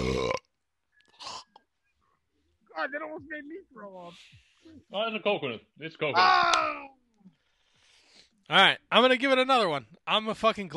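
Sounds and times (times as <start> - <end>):
loud deep rumbling burp: 0.0 - 0.6
speech: 2.8 - 7.4, 8.5 - 10.7.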